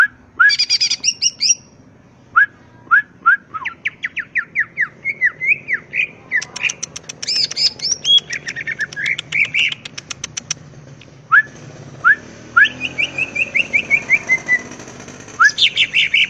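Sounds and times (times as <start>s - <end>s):
greater green leafbird singing with rapid ticks and wavering whistles: 0.0s - 2.4s, 3.2s - 10.6s, 11.2s - 16.2s.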